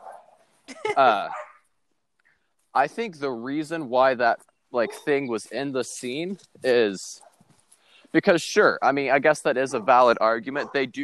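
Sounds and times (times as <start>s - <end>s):
dog barking: 0.0s - 0.4s, 1.3s - 1.6s, 9.7s - 10.9s
speech: 0.9s - 1.4s, 2.8s - 7.2s, 8.1s - 11.0s.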